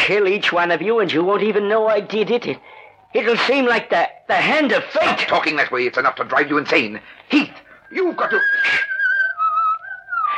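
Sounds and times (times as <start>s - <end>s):
speech: 0.1s - 8.9s
person whistling a slow melody: 7.9s - 10.3s.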